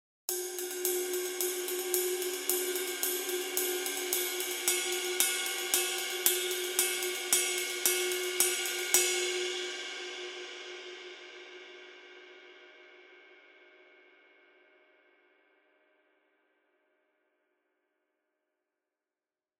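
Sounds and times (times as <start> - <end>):
ride cymbal: 0.3 - 10.8.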